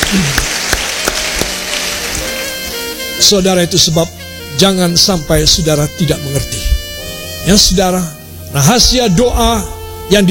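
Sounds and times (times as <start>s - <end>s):
audience applause at a church service: 0.0s - 2.9s
speech: 0.1s - 0.4s, 3.2s - 6.8s, 7.4s - 10.2s.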